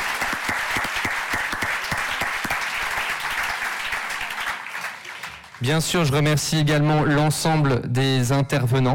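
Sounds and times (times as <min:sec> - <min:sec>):
audience applause: 0:00.0 - 0:05.9
speech: 0:05.6 - 0:08.9.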